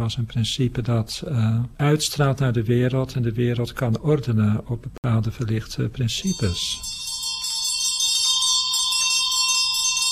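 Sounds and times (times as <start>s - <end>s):
speech: 0.0s - 7.0s
bell ringing with bright shimmering overtones: 6.2s - 10.0s.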